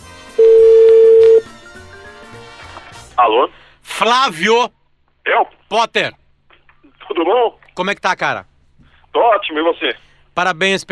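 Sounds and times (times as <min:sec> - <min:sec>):
telephone tone while a call is placed: 0:00.4 - 0:01.5
speech: 0:03.3 - 0:06.2, 0:07.1 - 0:08.5, 0:09.1 - 0:10.9.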